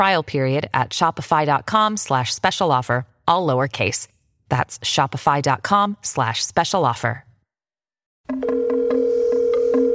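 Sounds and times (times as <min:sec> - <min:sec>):
speech: 0:00.0 - 0:07.3
steady electronic telephone tone of a call ringing out: 0:08.3 - 0:09.9.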